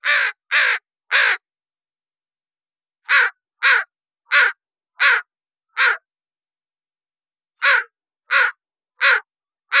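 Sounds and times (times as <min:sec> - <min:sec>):
Northwestern crow cawing: 0:00.0 - 0:01.4, 0:03.0 - 0:06.1, 0:07.6 - 0:09.7.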